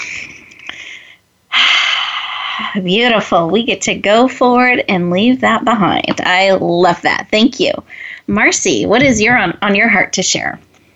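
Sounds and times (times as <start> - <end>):
person inhaling deeply during a guided group breathing exercise: 0.7 - 2.8
speech: 2.6 - 10.7.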